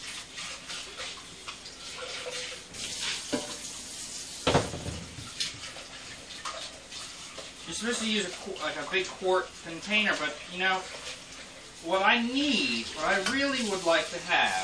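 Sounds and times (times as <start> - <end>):
water running from a tap: 0.0 - 14.6
pan clunking while handled and scrubbed under a tap: 2.0 - 3.8, 4.4 - 5.8, 13.1 - 13.6
speech: 7.8 - 11.1, 11.8 - 14.6.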